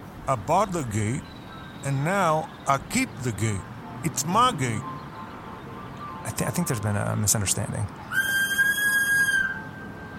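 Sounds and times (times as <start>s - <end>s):
speech: 0.3s - 4.9s, 6.2s - 8.3s
steady high-pitched whistle: 8.1s - 10.1s.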